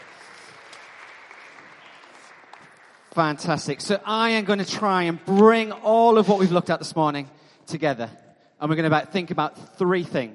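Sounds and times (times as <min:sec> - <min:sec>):
crowd clapping: 0:00.0 - 0:04.6
speech: 0:03.2 - 0:10.3.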